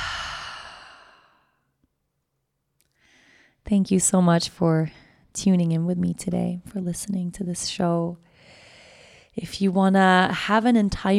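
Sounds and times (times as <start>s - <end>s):
deep breath exhaled during a guided yoga breathing exercise: 0.0s - 1.6s
speech: 3.6s - 8.6s, 9.4s - 11.1s.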